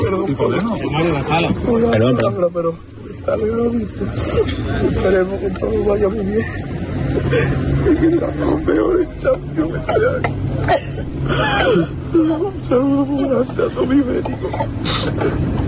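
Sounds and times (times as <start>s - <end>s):
low steady hum: 0.0s - 15.6s
speech: 0.3s - 15.6s
young football player sobbing inconsolably: 6.2s - 15.6s.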